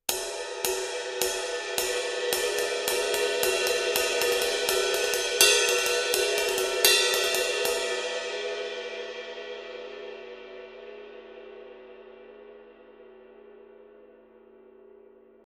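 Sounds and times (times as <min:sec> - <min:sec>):
Sabian 20 HHX stage ride cymbal: 0:00.1 - 0:09.3.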